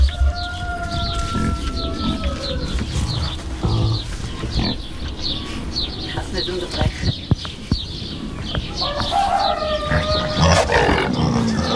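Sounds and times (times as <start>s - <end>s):
birds chirping: 0.0s - 11.7s
wild boar grunting and snorting: 1.4s - 6.1s, 9.7s - 11.7s.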